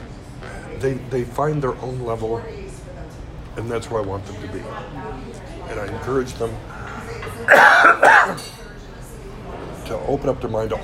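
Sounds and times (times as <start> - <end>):
speech: 0.8 - 2.6, 3.6 - 6.8, 7.4 - 8.6, 9.9 - 10.8
harsh throaty coughs: 7.5 - 8.6.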